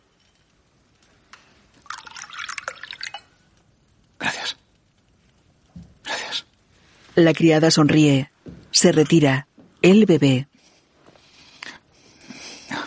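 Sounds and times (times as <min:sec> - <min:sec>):
red wine poured from a bottle into a glass: 0:01.8 - 0:03.5
speech: 0:07.2 - 0:10.5.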